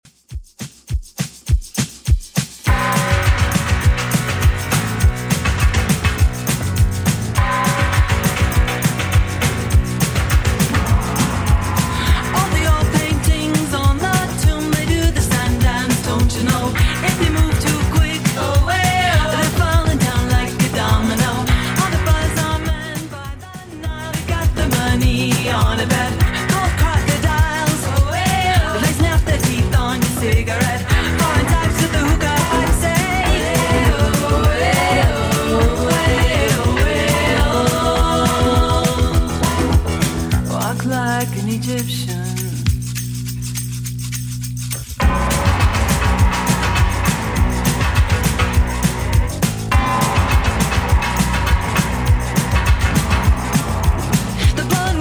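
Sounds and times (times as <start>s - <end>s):
80s style music at 102 bpm: 1.2s - 55.0s.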